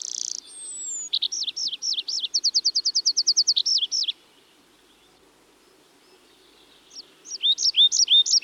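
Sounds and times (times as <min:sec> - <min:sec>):
Tree pipit Anthus trivialis singing: 0:00.0 - 0:04.2, 0:06.0 - 0:08.4.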